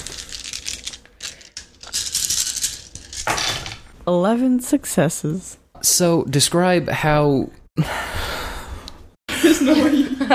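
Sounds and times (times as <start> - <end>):
twenty-two plastic dice rolled at once on a hard surface for a tabletop role-playing game: 0.0 - 3.8
speech: 4.0 - 8.0
laughter: 9.3 - 10.3.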